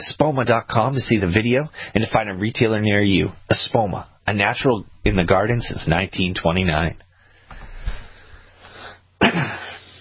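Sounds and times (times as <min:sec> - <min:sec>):
speech: 0:00.2 - 0:07.0, 0:09.2 - 0:09.8
sharp loud cough: 0:09.2 - 0:09.8.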